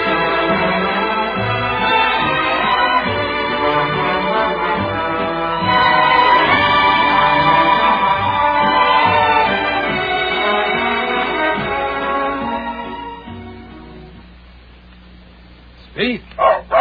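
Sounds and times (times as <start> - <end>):
sustained tonal sound: 0.0 - 14.0
dog barking on command: 16.4 - 16.7.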